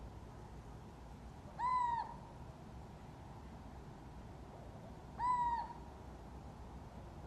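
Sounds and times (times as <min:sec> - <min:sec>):
little owl Athene noctua hooting: 0:01.6 - 0:02.2, 0:05.2 - 0:05.8.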